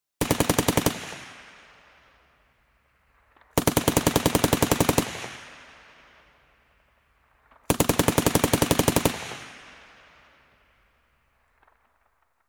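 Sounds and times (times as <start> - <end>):
general purpose machine gun surface fire from close left: 0.2 - 1.8, 3.4 - 6.2, 7.5 - 10.2.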